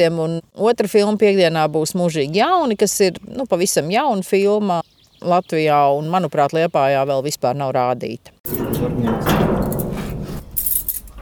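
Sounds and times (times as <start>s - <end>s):
speech: 0.0s - 9.4s
clatter of metal: 8.5s - 11.2s
keys jingling and scraping in the door lock of a fortress museum: 8.5s - 11.2s
light rattling: 8.5s - 11.2s.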